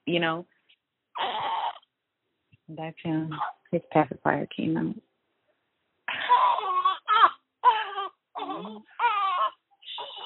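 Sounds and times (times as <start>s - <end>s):
speech: 0.1s - 0.5s, 2.7s - 5.1s
six-day-old newborn baby waking up and crying: 1.1s - 1.9s, 3.3s - 3.7s, 6.1s - 10.2s.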